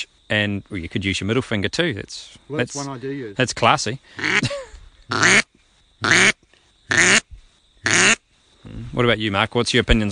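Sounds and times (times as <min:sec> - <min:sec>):
speech: 0:00.3 - 0:06.3, 0:09.0 - 0:10.1
duck call quacks: 0:04.2 - 0:04.5, 0:05.1 - 0:07.2, 0:07.8 - 0:08.2.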